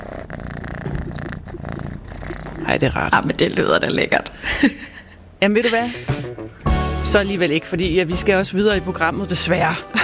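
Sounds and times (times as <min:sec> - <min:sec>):
cat purring: 0:00.0 - 0:04.4
speech: 0:02.7 - 0:06.2, 0:07.0 - 0:10.0.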